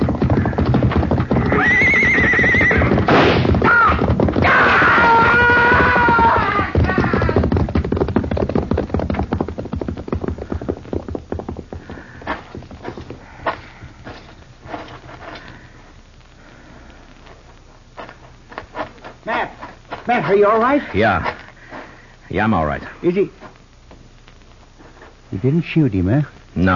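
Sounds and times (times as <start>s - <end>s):
horse hooves galloping: 0.0s - 26.7s
horse whinnying loudly and shrilly in a corral: 0.4s - 7.6s
speech: 20.4s - 21.4s, 22.4s - 23.4s, 25.4s - 26.7s.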